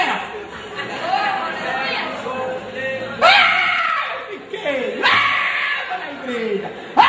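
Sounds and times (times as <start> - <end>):
laughter: 0.2 - 2.1, 3.2 - 7.0
audience shouting and crying out: 3.2 - 4.3, 4.9 - 6.1.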